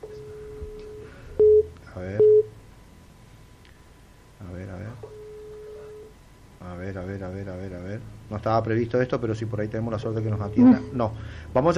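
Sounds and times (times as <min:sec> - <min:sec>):
telephone line busy signal: 0:00.0 - 0:02.5, 0:10.4 - 0:11.2
speech: 0:08.4 - 0:11.7.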